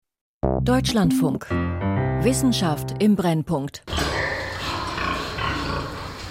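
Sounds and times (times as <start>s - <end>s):
speech: 0.6s - 4.3s
pigs grunting in an indoor barn: 3.9s - 6.3s.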